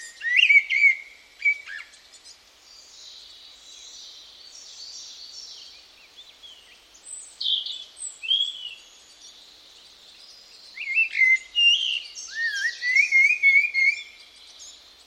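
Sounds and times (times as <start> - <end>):
bird calls: 0.0 - 15.0.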